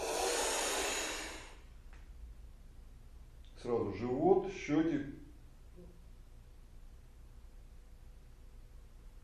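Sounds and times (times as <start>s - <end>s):
breath drawn in through a small tube during a kriya breathing exercise: 0.0s - 1.6s
speech: 3.6s - 5.2s.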